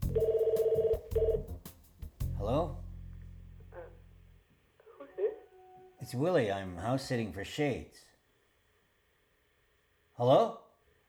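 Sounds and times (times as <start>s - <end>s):
low rumble: 0.0s - 4.4s
telephone ringing in electronic bursts in an apartment: 0.2s - 1.4s
speech: 6.1s - 8.1s, 10.2s - 10.6s.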